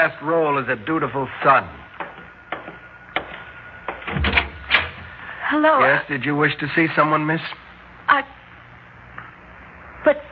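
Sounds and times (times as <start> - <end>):
speech: 0.0 - 1.8, 5.5 - 8.4, 10.0 - 10.3
door rattling and thudding as it swings open: 2.1 - 5.1
door latch clicks: 3.2 - 5.0.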